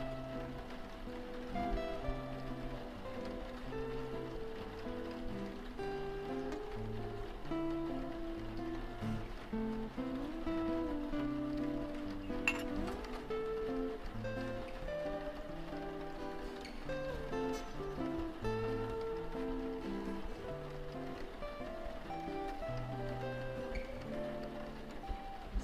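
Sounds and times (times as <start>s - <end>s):
jazz with walking bass line and mellow chords: 0.0s - 25.6s
soft hiss of rain: 0.0s - 25.6s.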